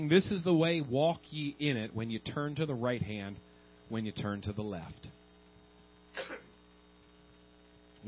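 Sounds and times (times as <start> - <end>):
speech: 0.0 - 5.1
person coughing: 6.1 - 6.6.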